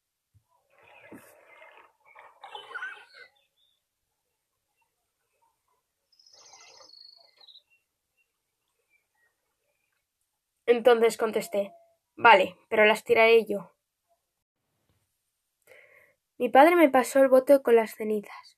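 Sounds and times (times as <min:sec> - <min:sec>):
dense croaking and chattering calls in a wetland: 0:00.7 - 0:03.8, 0:04.7 - 0:10.0
scattered chirps: 0:00.7 - 0:03.9, 0:04.8 - 0:10.0
speech: 0:10.7 - 0:13.7, 0:16.4 - 0:18.5.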